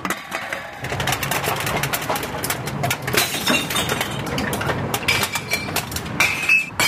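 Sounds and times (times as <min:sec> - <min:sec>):
glass bottles and metal cans clattering into recycling bins near an office building: 0:00.0 - 0:06.8
glass shattering: 0:03.1 - 0:06.8.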